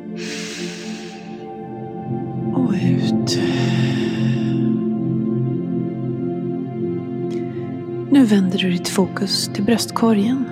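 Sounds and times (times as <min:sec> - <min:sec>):
soft sustained musical drone: 0:00.0 - 0:10.4
deep inhalation through the nose: 0:00.2 - 0:01.6, 0:03.4 - 0:04.8
speech: 0:02.7 - 0:03.8, 0:08.2 - 0:10.4.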